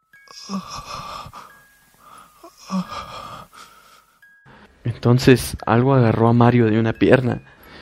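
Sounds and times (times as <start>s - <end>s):
speech: 0.3s - 1.0s, 5.0s - 7.5s
ghostly breathy moaning cry from under a bed: 0.3s - 4.0s.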